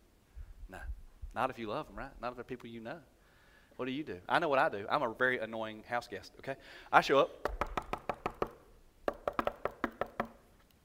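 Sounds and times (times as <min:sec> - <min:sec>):
speech: 0:01.4 - 0:03.2, 0:03.8 - 0:07.7
knocking on a house's side door: 0:07.5 - 0:10.4.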